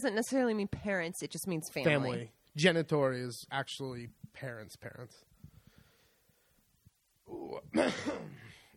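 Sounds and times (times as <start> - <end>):
speech: 0.0 - 5.3, 7.3 - 8.5
person coughing into a microphone: 7.7 - 8.7.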